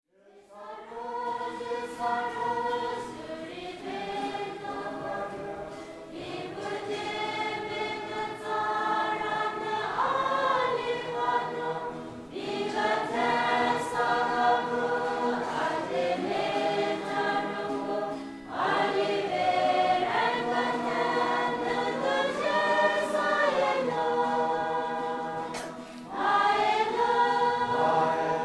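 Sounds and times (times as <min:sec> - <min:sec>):
carol singing: 0:00.4 - 0:28.4.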